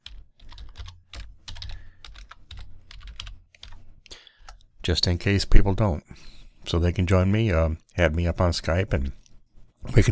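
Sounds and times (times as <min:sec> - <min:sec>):
rapid typing on a computer keyboard: 0:00.0 - 0:03.8
speech: 0:04.8 - 0:09.2, 0:09.8 - 0:10.1.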